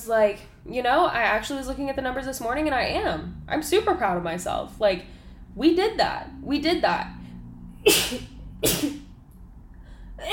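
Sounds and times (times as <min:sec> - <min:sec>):
speech: 0:00.0 - 0:07.2, 0:07.8 - 0:09.0
person sneezing: 0:07.9 - 0:09.0.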